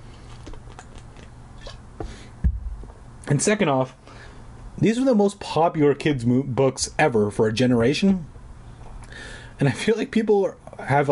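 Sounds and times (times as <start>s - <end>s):
small sips of a drink: 0.2s - 2.3s
soft wet mouth clicks: 0.4s - 1.8s
louder gulp of a drink: 1.6s - 1.8s
speech: 3.3s - 4.0s, 4.8s - 8.3s, 9.6s - 11.1s.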